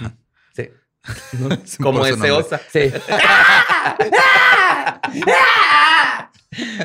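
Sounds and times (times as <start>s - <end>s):
speech: 0.0s - 6.8s
laughter: 1.1s - 1.7s, 2.6s - 6.8s
bobcat screaming: 3.2s - 6.3s.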